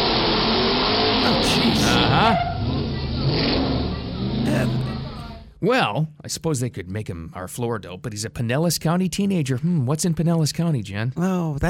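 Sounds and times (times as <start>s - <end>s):
pickup truck engine revving during a burnout: 0.0s - 5.5s
speech: 1.3s - 2.5s, 5.6s - 11.6s.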